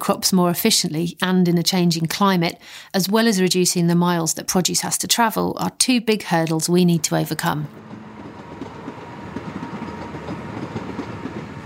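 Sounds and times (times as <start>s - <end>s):
speech: 0.0s - 8.1s
train rumbling over an old railway arch in Bristol: 6.9s - 11.6s.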